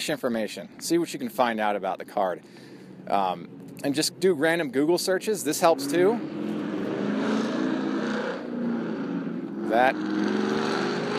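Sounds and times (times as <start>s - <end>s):
speech: 0.0s - 6.5s, 9.7s - 10.5s
loud car passing with engine revving: 5.7s - 11.1s.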